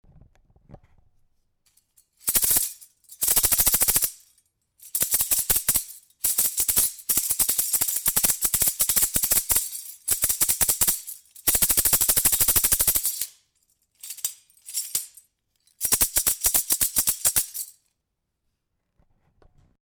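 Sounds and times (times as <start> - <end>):
rattle: 1.7 - 17.9.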